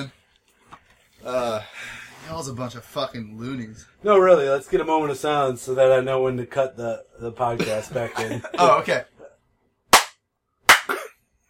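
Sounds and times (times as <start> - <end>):
speech: 1.2 - 9.1
sharp loud hand claps: 9.9 - 11.0.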